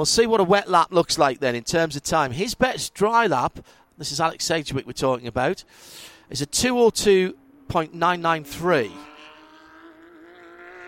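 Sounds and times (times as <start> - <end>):
speech: 0.0 - 9.1
race car engine on track at high revs: 6.0 - 10.8.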